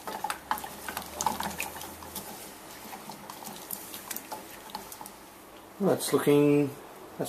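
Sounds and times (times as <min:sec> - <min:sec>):
utensil scraping a saucepan stirring cream and melting chocolate: 0:00.0 - 0:05.1
chocolate and cream crackling and bubbling in a saucepan on medium heat: 0:00.0 - 0:05.8
speech: 0:05.8 - 0:07.2.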